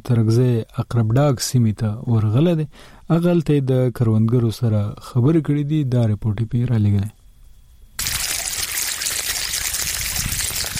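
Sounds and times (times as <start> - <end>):
speech: 0.1 - 7.2
water rushing from a small pipe irrigating millet and okra field plots: 8.0 - 10.7.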